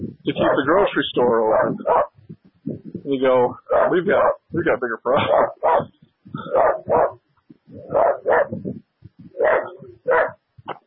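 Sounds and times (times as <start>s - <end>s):
speech: 0.4s - 2.1s, 3.1s - 6.0s
dog barking: 0.4s - 2.2s, 3.7s - 4.4s, 5.1s - 7.2s, 7.8s - 8.7s, 9.4s - 10.4s.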